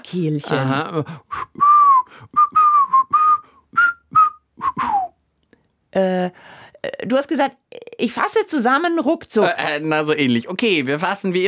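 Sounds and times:
speech: 0.1s - 1.3s, 6.0s - 11.4s
person whistling a short lilting tune: 1.3s - 5.2s.

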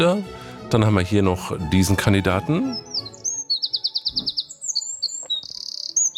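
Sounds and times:
speech: 0.0s - 2.9s
wren singing a trilling song: 1.8s - 6.1s.

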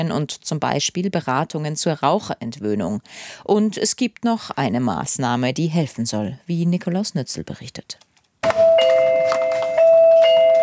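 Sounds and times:
speech: 0.0s - 8.1s
electronic pharmacy shop door chime: 8.5s - 10.6s.

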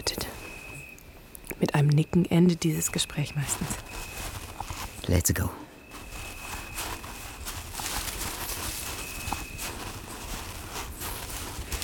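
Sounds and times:
speech: 1.6s - 4.1s, 5.1s - 5.6s
twigs and leaves brushing past: 3.0s - 5.2s, 5.8s - 11.8s
footsteps crunching along a worn footpath through bushes: 3.5s - 5.1s, 5.9s - 11.8s.

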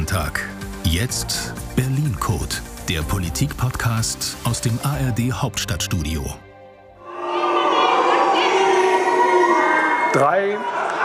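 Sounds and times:
speech: 0.1s - 6.4s, 10.1s - 10.8s
dense crowd of protesters booing and jeering as the new heating law is passed: 7.0s - 11.0s.

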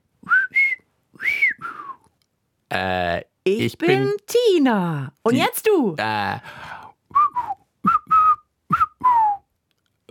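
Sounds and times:
person whistling a short melodic phrase: 0.2s - 2.0s, 7.1s - 9.5s
speech: 2.8s - 6.6s.

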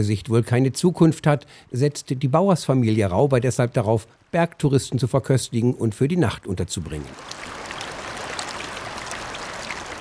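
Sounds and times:
speech: 0.0s - 7.5s
glacial river rushing over a gravel bed: 7.1s - 10.0s.

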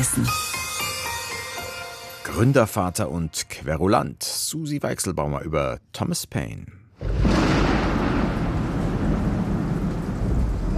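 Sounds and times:
speech: 2.3s - 6.8s
dense lashing rain at sea: 7.0s - 10.7s
heavy rumbling thunder at sea: 7.0s - 10.7s.

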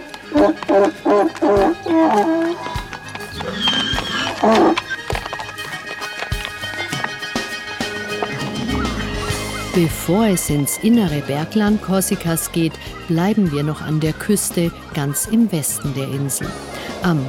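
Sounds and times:
donkey braying: 0.0s - 17.2s
shuffling and clopping: 0.0s - 17.2s
speech: 0.3s - 2.6s, 9.8s - 17.2s.

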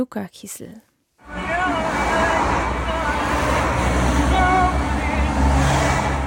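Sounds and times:
road traffic with cars rushing past: 1.2s - 6.2s.

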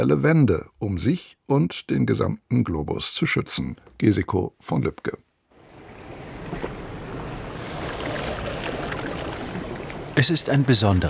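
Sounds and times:
speech: 0.0s - 5.2s, 10.2s - 11.0s
wind buffeting: 5.6s - 10.6s
Caribbean sea waves breaking on a sandy beach: 5.6s - 11.0s.

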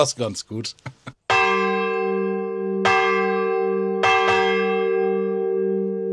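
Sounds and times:
speech: 0.0s - 1.7s
church bell tolling double strokes: 1.3s - 6.1s.

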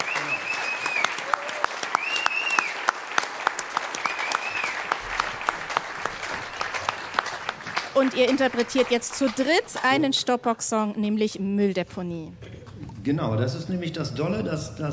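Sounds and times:
faint whistles: 0.0s - 1.2s, 2.0s - 2.8s, 4.0s - 4.8s
cheering: 0.0s - 8.8s
audience applause: 0.0s - 10.0s
speech: 8.0s - 14.9s.

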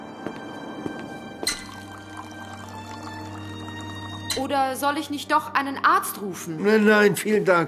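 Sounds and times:
glass clink: 1.4s - 3.0s, 4.2s - 4.5s
water poured into a glass: 1.4s - 4.8s
speech: 4.4s - 7.6s.

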